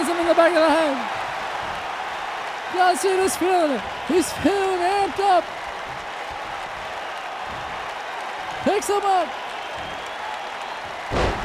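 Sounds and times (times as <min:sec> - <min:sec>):
constant roar of crowd noise: 0:00.0 - 0:11.4
speech: 0:00.3 - 0:01.2, 0:02.7 - 0:05.6, 0:08.6 - 0:09.4
wrestler slammed onto wrestling ring mat: 0:11.0 - 0:11.4.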